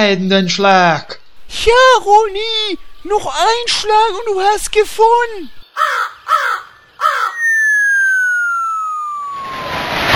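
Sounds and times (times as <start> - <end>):
speech: 0.0 - 7.2
giant crow cawing as it falls: 5.8 - 8.9
long descending whistle: 7.0 - 10.0.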